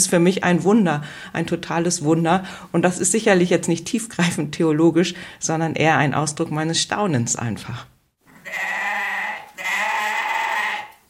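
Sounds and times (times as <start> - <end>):
speech: 0.0 - 8.8
goat bleating: 8.3 - 11.0.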